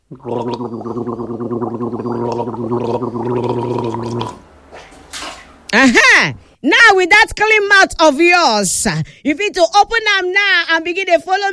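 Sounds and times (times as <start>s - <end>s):
gargling water in the mouth after tooth brushing: 0.0s - 5.4s
speech: 0.1s - 4.2s, 5.8s - 11.5s.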